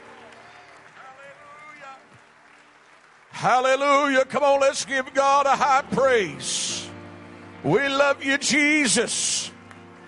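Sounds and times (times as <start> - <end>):
church audience clapping in praise: 0.0 - 5.9, 9.2 - 10.0
speech: 3.4 - 6.8, 7.6 - 9.6.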